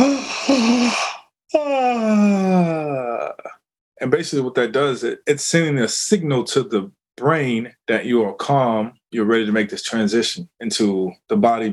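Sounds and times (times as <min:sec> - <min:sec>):
person yawning: 0:00.0 - 0:03.6
speech: 0:04.0 - 0:11.7.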